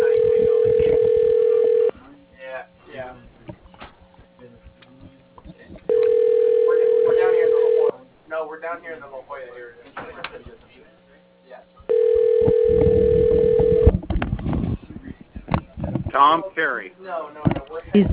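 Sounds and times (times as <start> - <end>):
telephone line tones after dialing an extension on a phone system: 0.0 - 1.9, 5.9 - 7.9, 11.9 - 13.9
people talking: 0.0 - 3.6, 4.4 - 11.0, 14.7 - 18.1.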